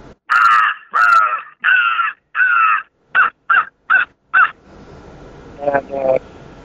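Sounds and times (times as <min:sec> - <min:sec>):
crow call blown by a turkey hunter: 0:00.3 - 0:04.6.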